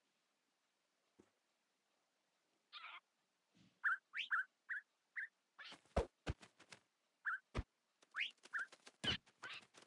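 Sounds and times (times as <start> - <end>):
video game parrots squawking and chirping: 2.8 - 3.1, 3.8 - 5.8, 7.2 - 7.5, 8.1 - 9.8.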